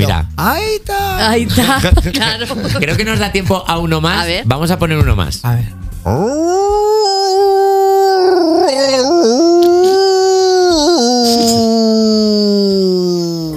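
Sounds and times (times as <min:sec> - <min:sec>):
speech: 0:00.1 - 0:07.6, 0:08.8 - 0:09.4
man imitating a howling wolf or dog: 0:06.0 - 0:13.5.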